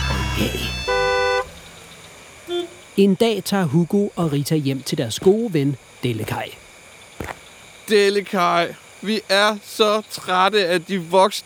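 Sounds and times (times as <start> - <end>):
car horn honking: 0.0 - 3.0
steady traffic rumble: 0.0 - 11.1
speech: 0.4 - 0.8, 3.0 - 6.6, 7.9 - 11.4.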